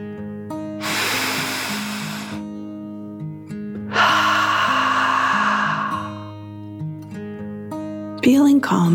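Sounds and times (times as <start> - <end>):
soft music with steady sustained tones: 0.0 - 8.9
deep calming breath in and out: 0.8 - 2.6, 3.9 - 6.5
speech: 8.2 - 8.9.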